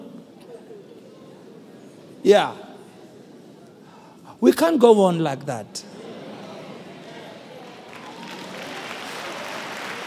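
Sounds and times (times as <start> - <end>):
speech: 2.2 - 2.6, 4.4 - 5.9
audience clapping during a sermon: 7.6 - 10.0.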